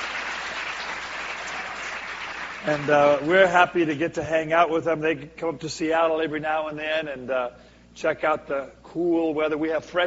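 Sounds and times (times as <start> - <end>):
audience applause for pastors: 0.0 - 3.4
speech: 2.6 - 10.0.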